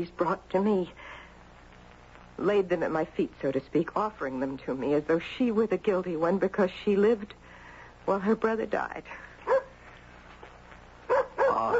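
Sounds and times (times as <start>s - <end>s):
speech: 0.0s - 1.0s, 2.4s - 7.4s, 8.0s - 9.3s
low noise: 0.0s - 11.7s
dog barking at the door: 9.4s - 9.8s, 11.1s - 11.7s.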